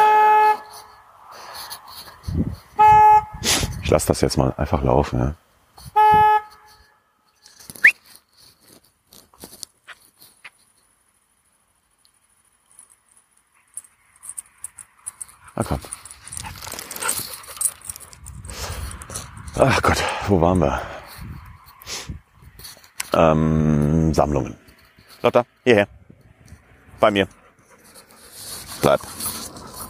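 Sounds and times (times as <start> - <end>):
car horn honking: 0.0 - 0.8, 2.8 - 3.5, 5.9 - 6.9
speech: 3.9 - 5.4, 19.7 - 20.9, 23.2 - 24.6, 25.2 - 26.0, 27.0 - 27.4, 28.8 - 29.3.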